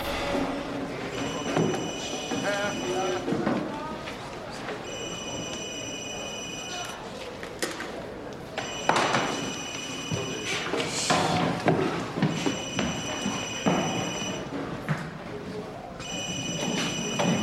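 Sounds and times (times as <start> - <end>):
busy noisy background: 0.0 - 17.4
telephone taped under a chair ringing in electronic bursts: 1.2 - 3.2, 4.9 - 7.0, 8.6 - 10.5, 12.4 - 14.4, 16.0 - 17.4.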